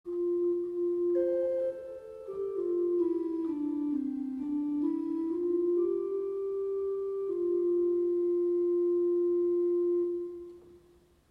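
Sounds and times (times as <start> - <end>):
Gedackt 8 organ stop playing: 0.2 - 10.8.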